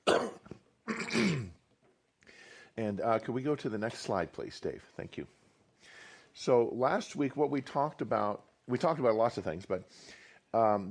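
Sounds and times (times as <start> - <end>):
adult giving a slide presentation coughing: 0.0 - 1.6
speech: 2.9 - 5.4, 6.4 - 10.8.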